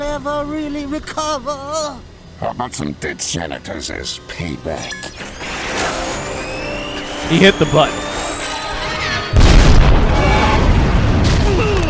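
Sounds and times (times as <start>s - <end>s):
speech: 0.2s - 5.6s, 7.3s - 8.2s
blast roar and rumble: 5.2s - 11.8s
C4 explosives detonating: 9.2s - 11.8s.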